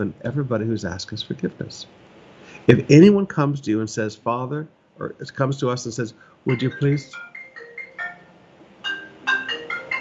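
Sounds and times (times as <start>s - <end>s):
speech: 0.0s - 7.3s
preacher's mobile phone ringing with a short melodic ringtone during a sermon: 6.5s - 9.9s.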